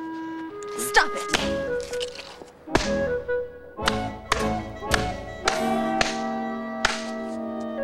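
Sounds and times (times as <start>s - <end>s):
steady musical backdrop: 0.0s - 7.8s
speech: 0.8s - 3.1s
woman slapping a man's face: 1.3s - 1.6s, 2.7s - 3.1s, 3.8s - 7.4s.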